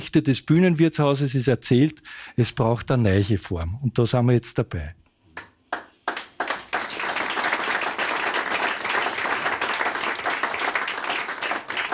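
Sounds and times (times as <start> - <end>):
speech: 0.0 - 5.0
audience applause from a sizable crowd: 6.1 - 11.9.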